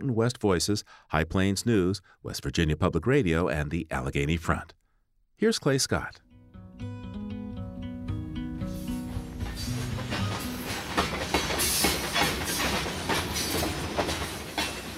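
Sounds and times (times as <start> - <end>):
speech: 0.0 - 4.8, 5.4 - 6.2
long freight train loaded with coal rolling on rails: 8.6 - 14.9.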